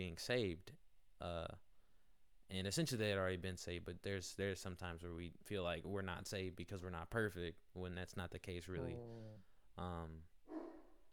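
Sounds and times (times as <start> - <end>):
speech: 0.0 - 1.6, 2.5 - 10.3
dog barking: 10.5 - 11.0.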